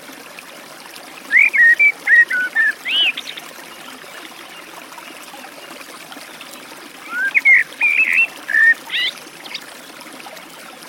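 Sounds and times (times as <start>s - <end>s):
trickling forest stream: 0.0s - 10.8s
Eurasian blackbird singing: 1.3s - 3.4s, 7.1s - 9.6s.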